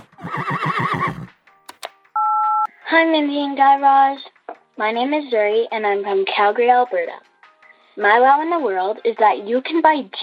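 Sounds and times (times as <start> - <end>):
horse whinnying: 0.0 - 1.3
short electronic beeps: 2.2 - 2.7
speech: 2.9 - 7.2, 8.0 - 10.2.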